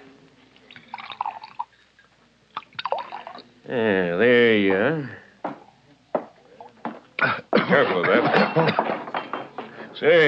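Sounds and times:
liquor glugging from a bottle into a glass at a bar: 0.7 - 1.8, 2.6 - 3.5
speech: 3.7 - 5.2, 10.0 - 10.2
laughter: 7.2 - 9.0.

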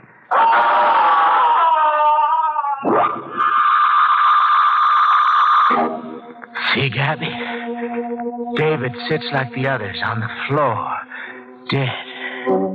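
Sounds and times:
man screaming: 0.3 - 5.7
music: 5.7 - 12.7
speech: 6.8 - 11.0, 11.7 - 12.7.

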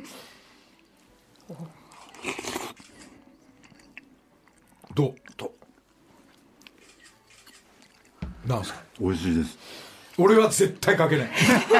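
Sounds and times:
person eating crunchy food at a morning market: 1.2 - 8.2
speech: 5.0 - 5.2, 8.5 - 11.7
laughter: 11.3 - 11.7.

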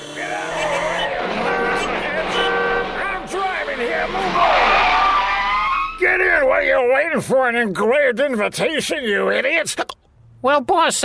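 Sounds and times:
car tires squealing while pulling up: 0.0 - 6.7
car engine: 0.0 - 6.9
speech: 6.8 - 11.0.

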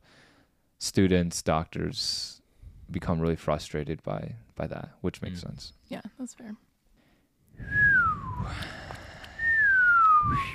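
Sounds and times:
speech: 1.0 - 6.7, 7.6 - 8.7, 10.2 - 10.5
person attempting to whistle breathily: 7.6 - 10.5.

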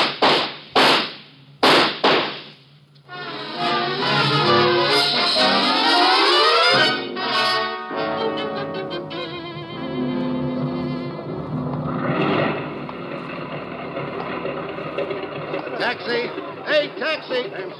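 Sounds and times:
gunshots from a man opening fire: 0.0 - 2.7
dramatic orchestral music: 3.1 - 17.2.

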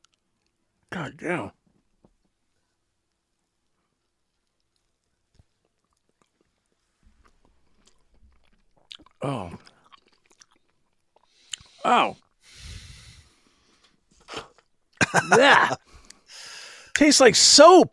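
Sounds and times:
speech: 0.9 - 1.6, 9.2 - 9.7, 11.8 - 12.2, 15.1 - 15.8, 17.0 - 17.9
chewing on a single slice of candy: 4.0 - 12.4.

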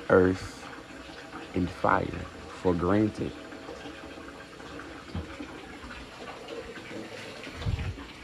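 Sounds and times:
running water like a tap or small stream pouring: 0.0 - 8.2
speech: 0.1 - 0.6, 1.5 - 3.4.

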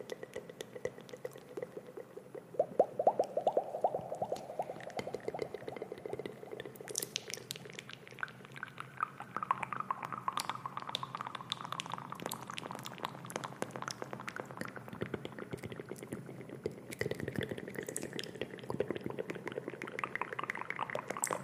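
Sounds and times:
wet mouth sounds crackling and smacking: 0.0 - 21.4.

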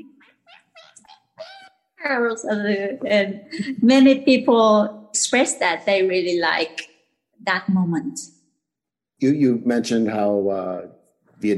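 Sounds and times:
voice imitating a cat meowing: 0.4 - 1.8
speech: 2.0 - 8.4, 9.2 - 11.5.

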